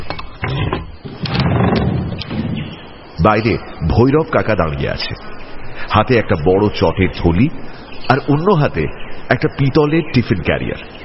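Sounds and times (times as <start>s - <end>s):
wooden bolt on a front door being drawn open: 0.2s - 2.8s
speech: 3.2s - 5.3s, 6.0s - 10.9s.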